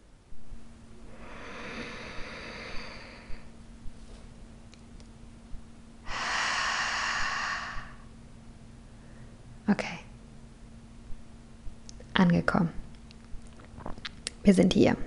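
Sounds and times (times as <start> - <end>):
person taking a slow deep breath: 1.0 - 3.6, 6.0 - 8.1
speech: 12.2 - 12.8, 14.4 - 15.0.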